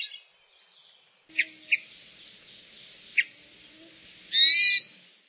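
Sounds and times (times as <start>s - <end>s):
Hermit Thrush singing: 1.3s - 5.2s.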